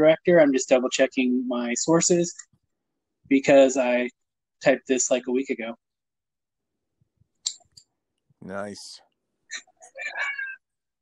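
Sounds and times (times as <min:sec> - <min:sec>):
speech: 0:00.0 - 0:02.5, 0:03.3 - 0:05.8, 0:08.4 - 0:10.4
cat meowing: 0:09.9 - 0:10.6.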